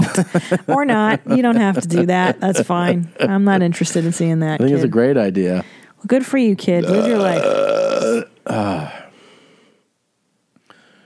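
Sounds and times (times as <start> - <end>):
laughter: 0.0 - 5.0
speech: 0.2 - 9.0
loud belch: 6.8 - 9.0.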